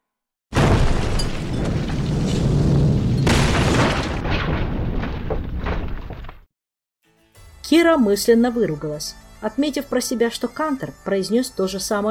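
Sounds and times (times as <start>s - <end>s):
powerful explosion with deep roaring boom: 0.6s - 6.0s
crackling debris from an explosion: 0.6s - 6.5s
speech: 7.7s - 12.0s.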